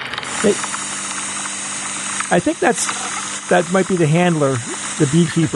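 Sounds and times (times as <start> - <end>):
honeybees humming in a hive: 0.1 - 5.5
speech: 0.5 - 0.8, 2.3 - 5.5.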